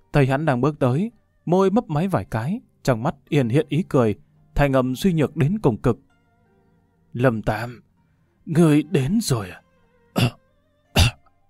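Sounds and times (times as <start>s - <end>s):
speech: 0.1s - 6.1s, 7.1s - 7.8s, 8.5s - 9.6s, 10.2s - 10.4s
frail sick old man coughing dryly: 10.2s - 10.4s, 11.0s - 11.3s.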